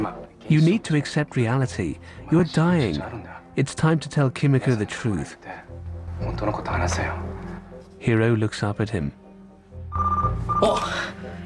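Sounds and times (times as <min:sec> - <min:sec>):
speech: 0:00.0 - 0:05.6, 0:06.2 - 0:07.3, 0:08.0 - 0:09.2, 0:10.6 - 0:11.2
telephone ringing: 0:09.9 - 0:10.6.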